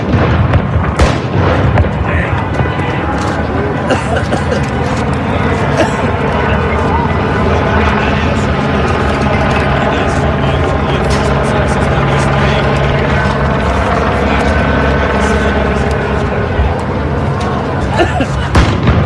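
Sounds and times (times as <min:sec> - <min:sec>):
rubber bullets and tear gas fired at demonstrators at a night protest: 0:00.0 - 0:02.8, 0:18.5 - 0:19.0
loud dense roar of noise at a night protest: 0:00.0 - 0:19.0
laughter: 0:03.0 - 0:15.8, 0:17.4 - 0:18.8.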